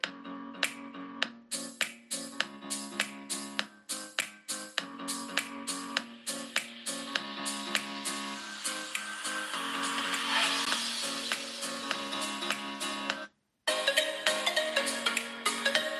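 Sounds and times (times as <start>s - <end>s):
bright tuneful music from a Pixel 4 smartphone loudspeaker at full volume: 1.5s - 15.9s.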